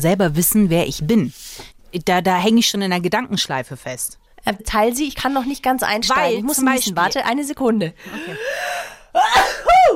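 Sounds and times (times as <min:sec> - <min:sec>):
speech: 0:00.0 - 0:09.9
person sneezing: 0:09.2 - 0:09.9.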